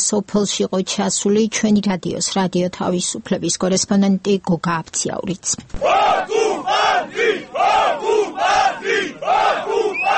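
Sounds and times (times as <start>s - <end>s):
speech: 0.1s - 8.0s
several hundred protesters chanting at a barbed-wire fence: 5.8s - 10.1s.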